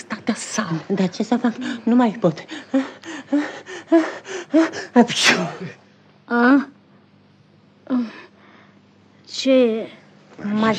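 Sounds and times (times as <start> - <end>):
speech: 0.3 - 6.7, 9.4 - 10.7
sneeze: 5.1 - 5.8.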